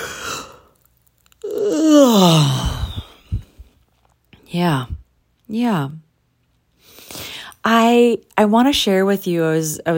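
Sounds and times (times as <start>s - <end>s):
soft mouth noises: 0.0s - 5.5s
long human yawn: 1.4s - 3.5s
speech: 4.5s - 6.0s, 7.6s - 9.9s.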